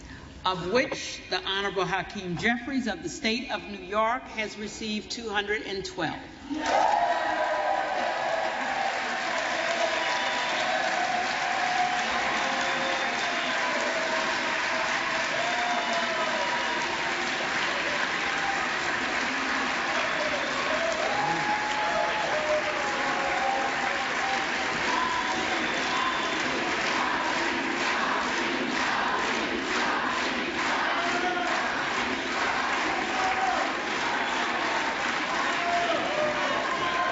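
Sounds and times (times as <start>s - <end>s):
speech: 0.4s - 7.2s
scattered shouts and whoops: 6.5s - 18.9s, 19.8s - 26.4s, 32.9s - 37.0s
large crowd cheering and applauding: 6.5s - 37.0s.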